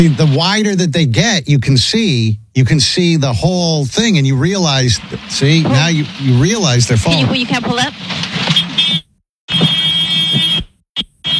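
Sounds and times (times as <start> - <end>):
speech: 0.0 - 8.2
buzzing warning alarm with a horn-like honk: 8.5 - 11.3.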